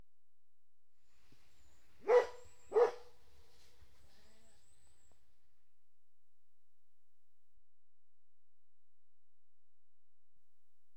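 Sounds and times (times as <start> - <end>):
dog barking: 2.0 - 3.2.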